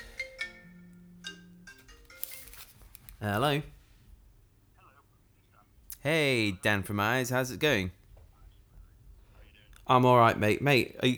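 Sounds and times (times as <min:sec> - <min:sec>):
mobile phone ringing with a melodic ringtone: 0:00.0 - 0:03.5
speech: 0:03.2 - 0:03.8, 0:06.0 - 0:08.0, 0:09.9 - 0:11.1.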